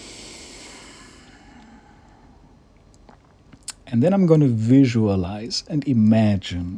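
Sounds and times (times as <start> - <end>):
deep breath in and out: 0.0 - 2.7
speech: 3.9 - 6.7.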